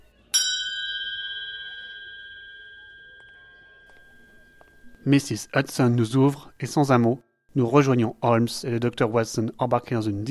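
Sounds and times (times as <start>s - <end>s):
short doorbell ring with bright metallic chime: 0.4s - 5.4s
speech: 5.0s - 10.2s.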